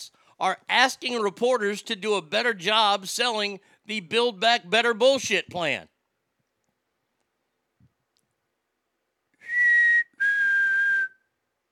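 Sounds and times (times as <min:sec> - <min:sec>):
speech: 0:00.0 - 0:05.9
whistle blown to get attention: 0:09.4 - 0:11.3.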